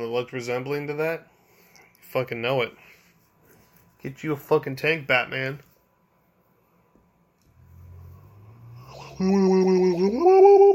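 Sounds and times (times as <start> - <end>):
speech: 0.1 - 1.4, 2.1 - 2.9, 4.0 - 5.7, 9.2 - 10.7
person yawning: 8.6 - 10.7.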